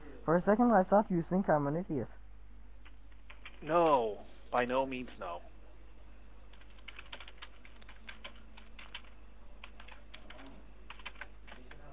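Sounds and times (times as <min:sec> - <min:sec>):
low steady hum: 0:00.0 - 0:11.9
speech: 0:00.2 - 0:02.2, 0:03.6 - 0:05.5
typing on a computer keyboard: 0:02.8 - 0:03.7, 0:06.5 - 0:11.9.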